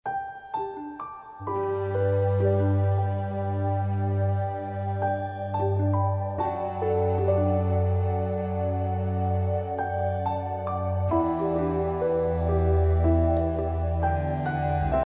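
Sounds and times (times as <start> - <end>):
classical music: 0.1 - 15.0.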